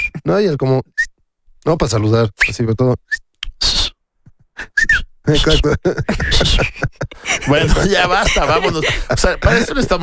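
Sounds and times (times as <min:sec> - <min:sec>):
loud Mexican-style human whistle: 0:00.0 - 0:00.2, 0:03.1 - 0:04.0, 0:04.6 - 0:05.1
speech: 0:00.3 - 0:03.3, 0:05.3 - 0:10.0
people laughing: 0:05.3 - 0:10.0.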